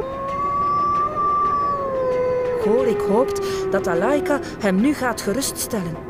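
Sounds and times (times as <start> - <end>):
wolves howling: 0.0 - 5.5
speech: 2.6 - 6.0.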